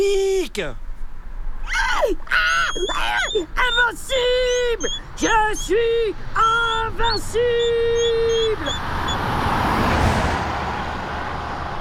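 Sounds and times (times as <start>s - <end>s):
speech: 0.0s - 0.9s, 2.1s - 9.4s
car driving past: 8.7s - 11.7s.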